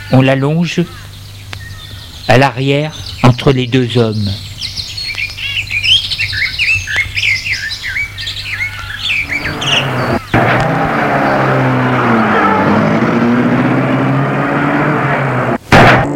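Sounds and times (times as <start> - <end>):
birds chirping and tweeting: 0.0 - 16.1
speech: 0.1 - 1.1, 2.3 - 4.7
car engine starting and roaring as the car pulls away: 9.1 - 16.1.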